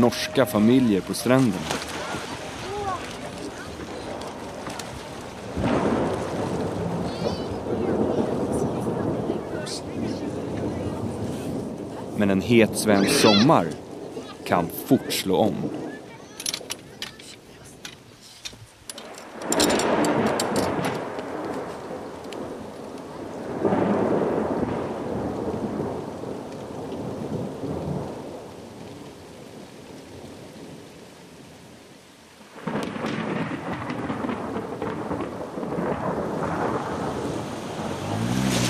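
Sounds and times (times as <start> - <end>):
speech: 0.0 - 1.9, 12.2 - 13.8, 14.5 - 15.9
deep rolls of thunder rumbling: 0.0 - 16.1, 19.3 - 30.9, 32.5 - 38.6
steady rain pouring down: 0.0 - 38.6.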